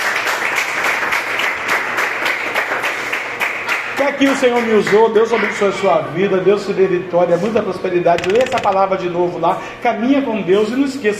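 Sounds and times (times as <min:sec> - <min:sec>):
large crowd applauding: 0:00.0 - 0:05.1
speech: 0:04.0 - 0:11.1.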